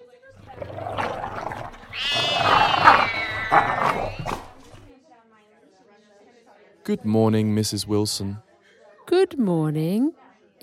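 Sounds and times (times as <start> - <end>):
big cat with long whiskers and a long tail meowing: 1.0 - 4.8
speech: 6.9 - 8.5, 9.1 - 10.6.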